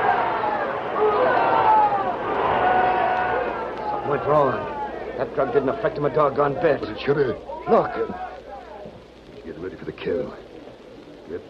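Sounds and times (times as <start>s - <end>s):
large bullfight crowd screaming and cheering: 0.0s - 9.0s
speech: 5.2s - 8.3s, 9.7s - 10.5s, 11.3s - 11.4s.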